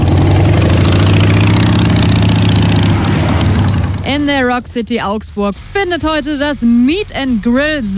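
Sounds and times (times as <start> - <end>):
motorcycle engine idling: 0.0 - 5.0
speech: 4.2 - 7.9.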